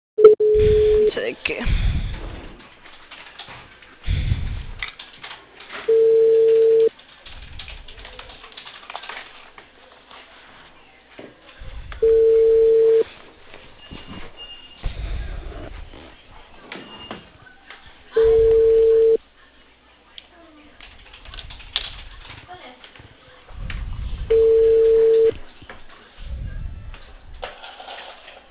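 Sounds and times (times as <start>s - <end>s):
ringback tone of an outgoing phone call to a cable company: 0.2s - 1.1s, 5.9s - 6.9s, 12.0s - 13.1s, 18.2s - 19.2s, 24.3s - 25.4s
faint low noise: 0.2s - 28.4s.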